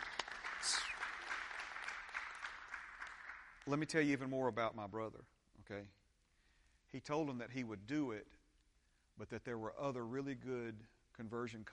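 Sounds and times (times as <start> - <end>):
audience clapping: 0.0 - 4.0
speech: 3.7 - 6.0, 6.9 - 8.4, 9.2 - 11.7.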